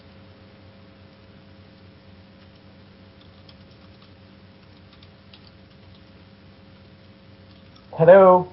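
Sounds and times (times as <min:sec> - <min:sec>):
steady low hum and hiss: 0:00.0 - 0:08.5
typing on a computer keyboard: 0:02.4 - 0:06.2, 0:07.4 - 0:07.9
speech: 0:08.0 - 0:08.5.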